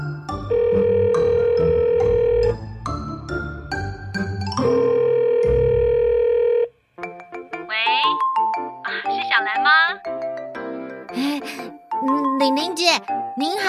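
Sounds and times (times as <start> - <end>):
soft music: 0.0 - 13.6
telephone ringback tone buzz while placing call: 0.5 - 2.6, 4.6 - 6.7.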